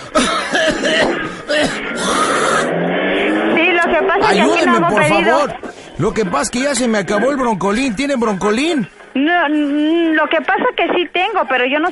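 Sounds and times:
person coughing harshly: 0:00.0 - 0:02.7
strained hoarse vocal sounds: 0:01.1 - 0:04.4
speech: 0:05.0 - 0:11.9.

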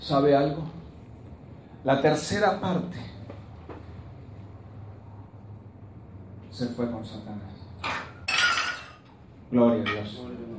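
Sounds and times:
speech: 0:00.1 - 0:00.8, 0:01.8 - 0:03.1, 0:06.6 - 0:08.0, 0:09.5 - 0:10.5
drinking glass hitting a hard floor: 0:07.8 - 0:09.0.

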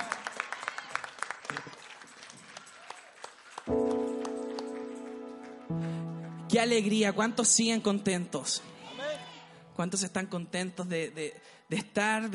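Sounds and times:
audience clapping: 0:00.0 - 0:07.8
speech: 0:06.6 - 0:08.7, 0:09.8 - 0:12.3.

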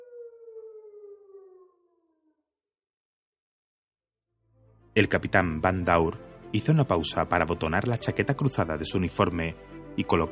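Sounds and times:
distant siren wailing: 0:00.0 - 0:02.6
speech: 0:05.0 - 0:10.3.

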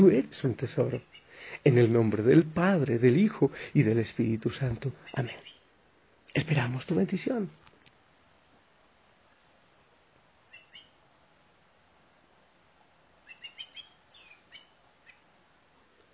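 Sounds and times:
speech: 0:00.0 - 0:05.5, 0:06.3 - 0:07.6
steady outdoor hiss: 0:00.0 - 0:16.1
blackbird singing: 0:05.0 - 0:05.7, 0:10.5 - 0:11.0, 0:13.2 - 0:15.3.

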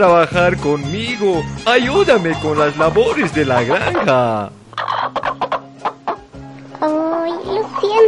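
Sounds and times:
speech: 0:00.0 - 0:04.6
rooster clucking: 0:02.4 - 0:06.3, 0:07.5 - 0:08.0.

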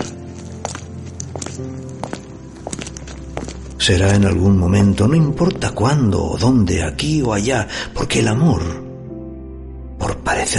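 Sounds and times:
footsteps with sharp heel strikes on a sidewalk: 0:00.0 - 0:04.3
speech: 0:01.6 - 0:02.1, 0:03.8 - 0:08.8.

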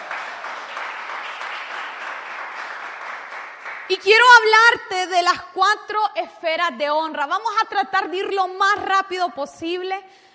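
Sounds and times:
crowd applause: 0:00.0 - 0:04.0
speech: 0:03.9 - 0:10.3.

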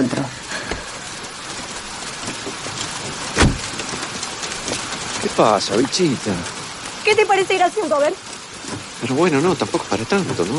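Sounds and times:
heavy rain: 0:00.0 - 0:10.5
thuds: 0:02.2 - 0:04.8
speech: 0:05.3 - 0:08.2, 0:09.0 - 0:10.5.

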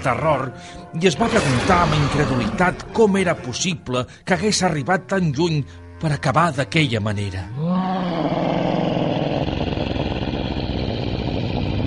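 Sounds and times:
speech: 0:00.0 - 0:08.4
monster roaring and growling: 0:01.2 - 0:03.0, 0:07.5 - 0:11.8.

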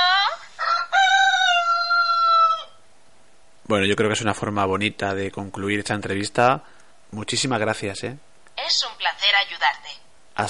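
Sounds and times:
rooster crowing: 0:00.1 - 0:02.8
speech: 0:03.7 - 0:10.4.

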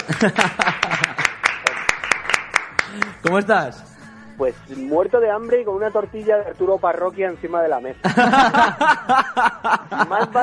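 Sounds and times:
laughter: 0:00.0 - 0:01.4, 0:08.0 - 0:10.4
hand clapping from a small group: 0:00.0 - 0:03.5
speech: 0:00.1 - 0:01.1, 0:02.9 - 0:10.4.

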